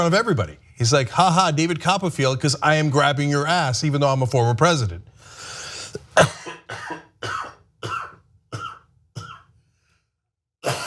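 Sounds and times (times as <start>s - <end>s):
speech: 0.0s - 7.0s
person coughing harshly: 5.9s - 9.6s, 10.6s - 10.8s.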